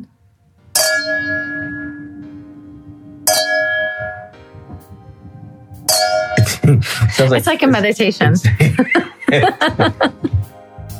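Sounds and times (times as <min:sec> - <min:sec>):
metallic gong-like object struck and ringing: 0:00.7 - 0:02.6, 0:03.2 - 0:04.4, 0:05.8 - 0:06.6
laughter: 0:06.4 - 0:07.6, 0:08.4 - 0:10.5
speech: 0:06.7 - 0:10.4.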